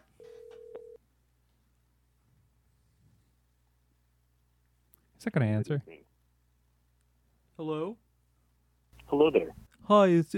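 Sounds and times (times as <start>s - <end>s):
faint hum: 0.0s - 10.3s
electronic telephone ringback tone on an outgoing call: 0.2s - 1.0s
speech: 5.2s - 6.1s, 7.6s - 8.0s, 9.1s - 10.3s.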